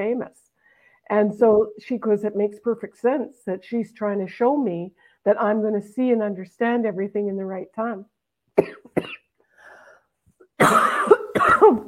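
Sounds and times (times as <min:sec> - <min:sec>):
speech: 0:00.0 - 0:00.5, 0:01.1 - 0:09.2, 0:11.6 - 0:11.8
faint breath: 0:00.6 - 0:01.1, 0:09.5 - 0:10.2
person coughing from a tickle in the throat: 0:08.6 - 0:09.3, 0:10.6 - 0:11.8.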